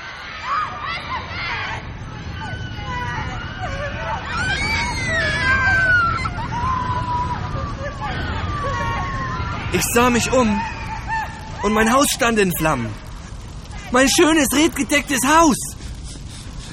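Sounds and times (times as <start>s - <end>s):
crowd of voices shouting and screaming: 0.0s - 15.7s
dense rumbling background: 1.6s - 16.7s
high wailing cries: 2.3s - 13.0s
speech: 9.8s - 10.8s, 11.6s - 13.0s, 13.9s - 15.7s.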